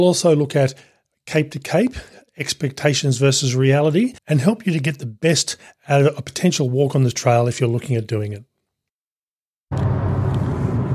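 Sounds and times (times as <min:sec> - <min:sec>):
speech: 0:00.0 - 0:08.5
road noise rumble in a moving car cabin: 0:09.7 - 0:10.9.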